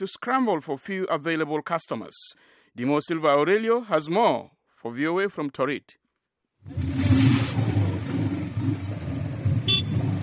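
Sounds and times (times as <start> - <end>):
speech: 0.0 - 6.0, 6.6 - 7.2
motorbike taxi engine revving: 6.6 - 10.2
high motorbike taxi horn toot: 9.6 - 10.2.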